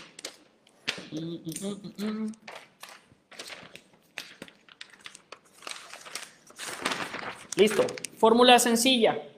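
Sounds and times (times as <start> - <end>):
speech: 1.1 - 2.5, 7.6 - 9.3
sheets of paper crinkling and crumpling as they are moved: 2.4 - 8.4.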